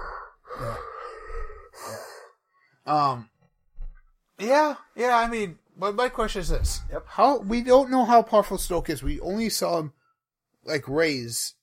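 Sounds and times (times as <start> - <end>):
person imitating the breathing of a mechanical respirator: 0.0 - 2.4
speech: 2.9 - 3.3, 4.4 - 10.0, 10.6 - 11.6.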